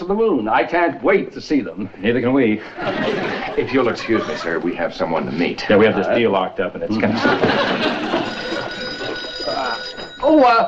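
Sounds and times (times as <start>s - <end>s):
speech: 0.1s - 8.4s, 10.3s - 10.6s
laughter: 2.5s - 10.1s
telephone ringing with a shrill electronic tone: 7.3s - 10.6s.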